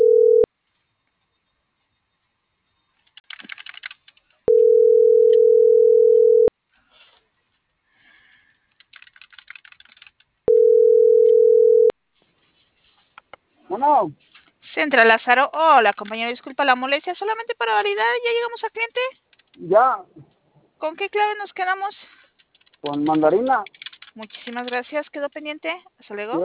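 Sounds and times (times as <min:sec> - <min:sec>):
telephone line tone while a call is dialed: 0:00.0 - 0:00.5, 0:04.5 - 0:06.5, 0:10.5 - 0:11.9
keyboard typing and clicking: 0:03.0 - 0:04.3, 0:08.7 - 0:10.3, 0:15.8 - 0:16.4, 0:22.4 - 0:24.8
speech: 0:13.9 - 0:20.2, 0:20.8 - 0:22.1, 0:22.8 - 0:26.4.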